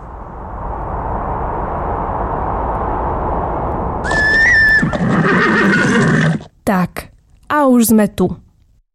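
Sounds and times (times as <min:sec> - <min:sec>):
steady rush of wind-like noise: 0:00.0 - 0:06.2
horse whinnying at a ranch in the Sásovská valley: 0:04.1 - 0:06.5
speech: 0:07.8 - 0:08.4.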